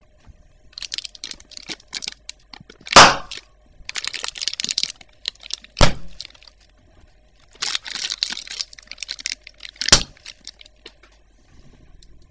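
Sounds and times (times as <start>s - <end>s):
plastic bubble bursting: 0.8s - 6.6s, 7.5s - 11.0s.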